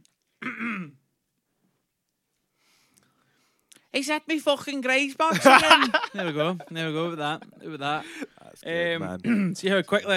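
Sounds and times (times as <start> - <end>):
loud rasping throat clearing: 0.4 - 1.0
speech: 3.9 - 10.1
laughter: 5.3 - 8.6.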